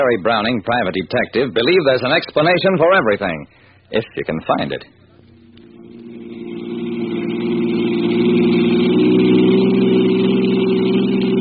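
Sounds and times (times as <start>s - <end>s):
speech: 0.0s - 5.0s
car engine revving as the car accelerates: 5.0s - 11.3s.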